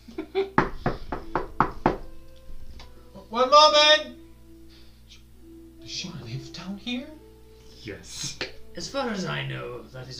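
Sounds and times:
firm knocks on a bedroom door: 0.6s - 2.0s
speech: 3.4s - 4.1s, 8.8s - 10.1s.

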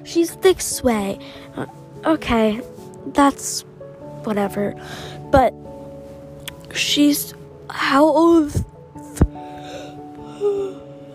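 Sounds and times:
speech: 0.0s - 5.7s, 6.7s - 8.7s
person yawning: 9.6s - 11.1s.

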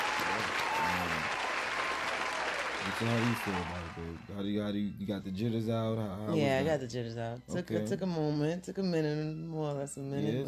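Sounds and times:
small crowd applause: 0.0s - 4.4s
speech: 3.0s - 10.4s.

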